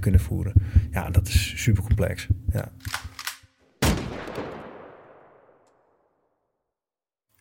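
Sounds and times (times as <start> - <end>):
speech: 0.0 - 3.0
gunfire bursts: 3.8 - 5.3
loud sharp gunshot with long rolling echo: 3.8 - 5.6.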